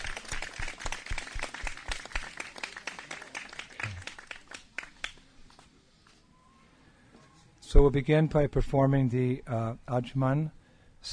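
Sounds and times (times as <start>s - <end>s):
crowd applauding: 0.0s - 5.2s
speech: 7.7s - 11.1s.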